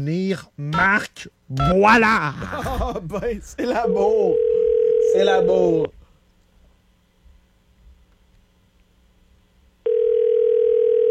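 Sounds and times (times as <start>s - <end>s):
speech: 0.0s - 6.0s
laughter: 2.2s - 4.2s
telephone ringing tone on an outgoing call: 4.3s - 5.7s, 9.8s - 11.0s.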